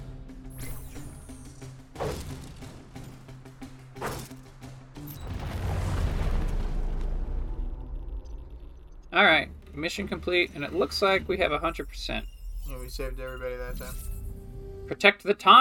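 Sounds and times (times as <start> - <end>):
video game enemy punched into a mountainside, loud rumbling crash: 5.2 - 9.3
video game cannon mech heavy booming impacts and thuds: 5.3 - 9.6
speech: 9.2 - 14.1, 14.9 - 15.5.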